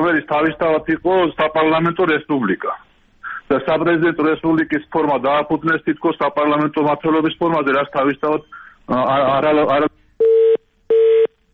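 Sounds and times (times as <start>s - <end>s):
speech: 0.0s - 2.9s, 3.5s - 10.0s
telephone busy tone beeps after a call disconnects: 10.2s - 11.3s.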